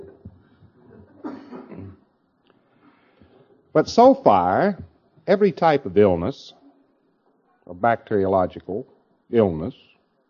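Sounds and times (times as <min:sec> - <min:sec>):
person coughing: 0:01.2 - 0:02.1
speech: 0:03.7 - 0:06.6, 0:07.7 - 0:09.9.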